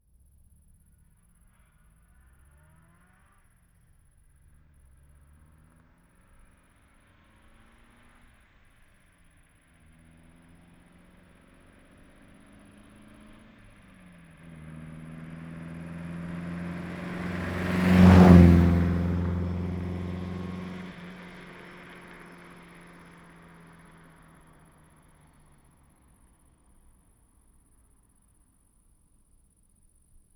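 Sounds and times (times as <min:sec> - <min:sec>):
1954 MG TF1500 passing by fast at the roadside: 0:09.9 - 0:25.5.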